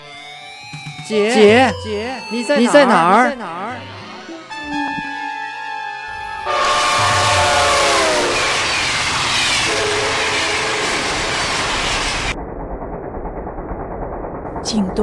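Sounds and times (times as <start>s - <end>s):
moving northbound passenger train roaring: 0.7s - 12.4s
speech: 1.1s - 3.9s, 14.7s - 15.0s
northbound passenger train horn: 3.7s - 11.7s.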